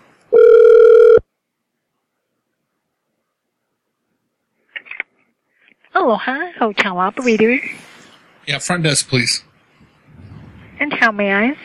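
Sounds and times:
telephone ringing on a prank call to a hotel: 0:00.3 - 0:01.2
speech: 0:06.0 - 0:07.9, 0:08.5 - 0:09.5, 0:11.0 - 0:11.6.

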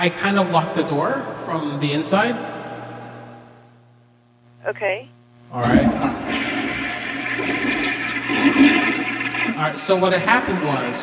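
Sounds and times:
speech: 0:00.0 - 0:02.6, 0:04.6 - 0:06.3, 0:09.6 - 0:11.0
toilet flushing until it overflows: 0:06.1 - 0:11.0
water spilling everywhere from an overflowing toilet: 0:06.3 - 0:11.0.

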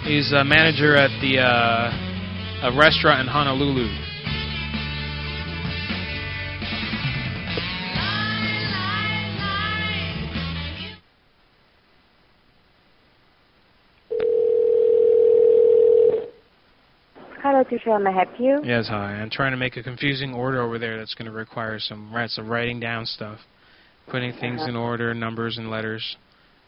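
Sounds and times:
music: 0:00.0 - 0:11.0
speech: 0:00.1 - 0:02.0, 0:02.6 - 0:04.0, 0:17.7 - 0:26.2
telephone dial tone as a call is placed: 0:14.1 - 0:16.4.

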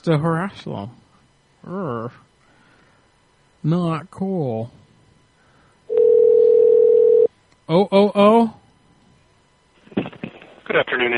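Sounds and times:
speech: 0:00.0 - 0:01.0, 0:01.6 - 0:02.3, 0:03.6 - 0:04.8, 0:07.7 - 0:08.6, 0:10.7 - 0:11.1
telephone busy signal: 0:05.9 - 0:07.3.

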